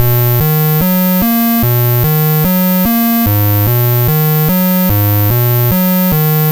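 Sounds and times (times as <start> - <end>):
Apple II 8-bit chiptune bass: 0.0 - 6.5.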